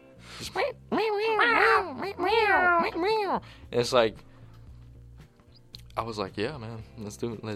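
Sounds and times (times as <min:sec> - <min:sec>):
speech: 0:00.4 - 0:04.3, 0:06.0 - 0:07.5
pitched cat meow sample chopped into a musical line: 0:01.1 - 0:03.4.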